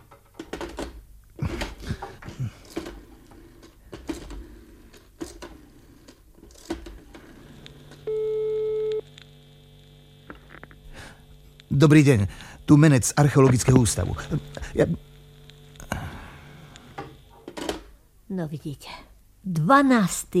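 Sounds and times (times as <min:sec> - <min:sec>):
buzzy telephone tone after a call is cut off: 0:07.5 - 0:10.6
speech: 0:11.8 - 0:15.0, 0:18.4 - 0:20.3.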